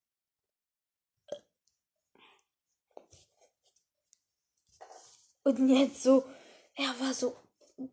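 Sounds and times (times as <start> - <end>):
burps: 1.3 - 1.6
speech: 5.5 - 7.9.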